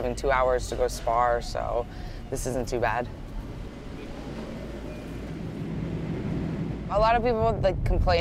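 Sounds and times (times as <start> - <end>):
speech: 0.0 - 3.2, 6.9 - 8.1
steady deep rumble: 2.2 - 8.1.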